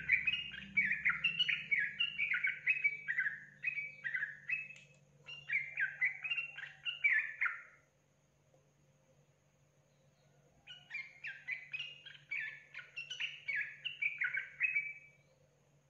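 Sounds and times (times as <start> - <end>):
Yellow-vented Bulbul song: 0.0 - 15.8.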